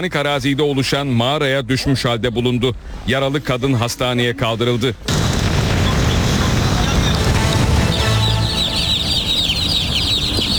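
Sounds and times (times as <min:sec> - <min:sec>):
speech: 0:00.0 - 0:05.3
loud steady rushing noise: 0:05.1 - 0:10.5
chicks cheeping at an intercity bus terminal: 0:07.0 - 0:10.5.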